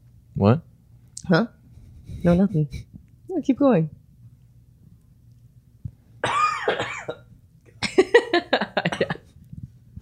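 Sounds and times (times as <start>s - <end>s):
speech: 0.4s - 0.7s, 1.3s - 1.6s, 2.2s - 4.0s
person coughing hard with rasping and sharp coughs: 6.2s - 8.1s, 8.8s - 9.3s.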